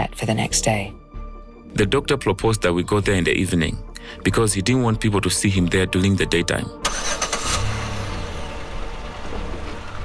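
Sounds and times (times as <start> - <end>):
speech: 0.2 - 1.0, 1.7 - 7.0
car engine starting: 6.7 - 10.0.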